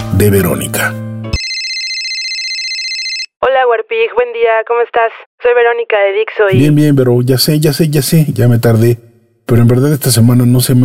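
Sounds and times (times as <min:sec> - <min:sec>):
speech: 0:00.2 - 0:01.0, 0:03.4 - 0:10.8
electronic phone ringtone signalling an incoming call: 0:01.4 - 0:03.4.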